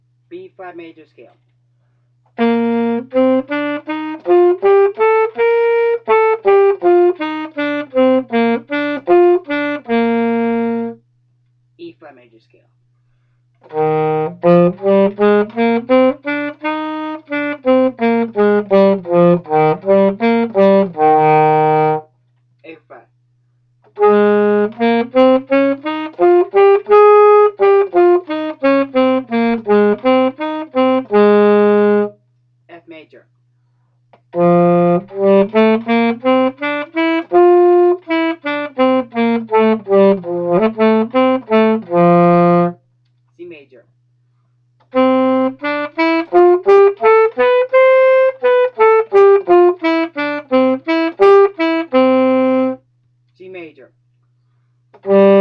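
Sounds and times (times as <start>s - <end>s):
saxophone playing scales: 2.3s - 11.0s, 13.6s - 22.1s, 23.9s - 32.2s, 34.2s - 42.8s, 44.8s - 52.9s, 54.9s - 55.4s.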